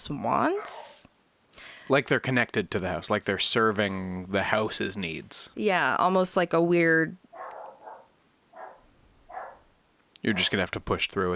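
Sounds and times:
speech: 0.0s - 0.9s, 1.9s - 7.5s, 10.2s - 11.3s
dog barking: 7.3s - 9.7s.

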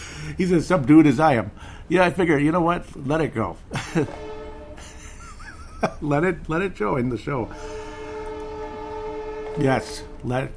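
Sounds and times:
low rumble of a passing train: 0.0s - 10.5s
speech: 0.2s - 4.3s, 5.8s - 7.7s, 9.6s - 10.5s
laughter: 3.7s - 6.4s
train horn blaring in a steady sustained chord: 3.9s - 5.4s, 7.2s - 10.5s.

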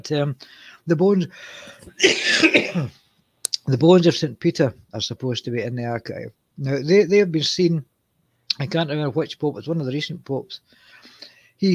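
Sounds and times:
speech: 0.0s - 3.0s, 3.7s - 7.9s, 8.6s - 11.7s
short throaty tickly cough: 1.9s - 3.0s
throat-clearing burst: 2.0s - 2.9s.

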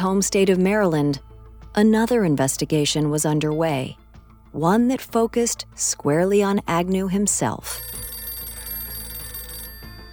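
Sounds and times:
speech: 0.0s - 8.0s
old-fashioned telephone bell ringing: 7.6s - 10.1s.

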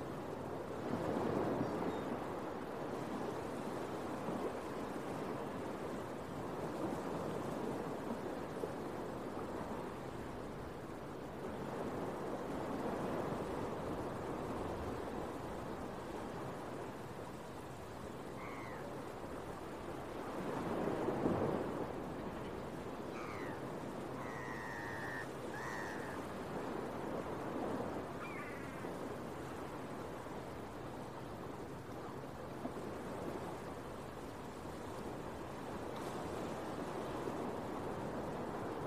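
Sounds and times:
beach waves washing in early morning: 0.0s - 38.8s
seagull cries over the surf in early morning: 23.2s - 23.6s, 24.2s - 26.2s.

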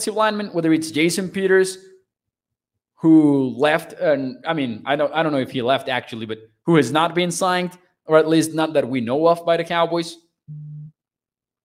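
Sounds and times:
speech: 0.0s - 1.9s, 3.0s - 10.7s
phone app notification low buzzing tone: 10.5s - 10.9s.

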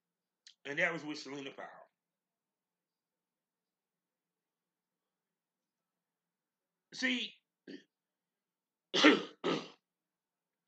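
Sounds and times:
speech: 0.7s - 1.8s, 7.0s - 7.9s, 8.9s - 9.6s
person coughing: 8.9s - 9.8s.

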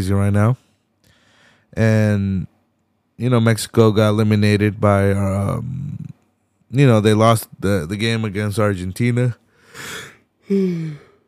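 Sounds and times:
speech: 0.0s - 0.6s, 1.7s - 2.5s, 3.2s - 6.1s, 6.7s - 11.0s
person yawning: 9.8s - 11.2s.

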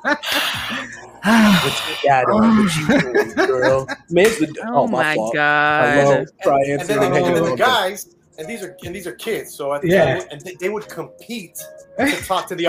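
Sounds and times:
person chuckling: 0.0s - 4.0s
speech: 0.0s - 12.6s
breathy gasps from imitated creepy heavy breathing: 0.2s - 2.0s
person imitating creepy moaning on a phone call: 0.2s - 3.0s.

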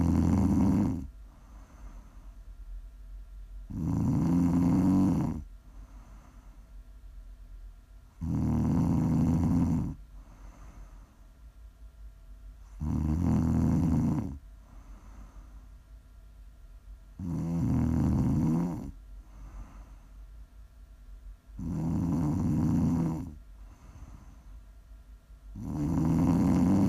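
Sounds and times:
person snoring loudly with rasping snores: 0.0s - 2.1s, 3.7s - 5.5s, 8.2s - 10.9s, 12.7s - 14.4s, 17.2s - 20.0s, 21.6s - 24.4s, 25.6s - 26.8s
faint steady hum: 0.0s - 26.8s
quiet breaths: 0.0s - 26.8s.

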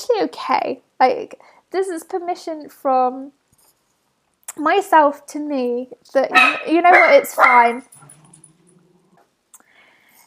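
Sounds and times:
speech: 0.1s - 3.4s, 4.5s - 8.1s
dog barking: 6.3s - 7.9s.

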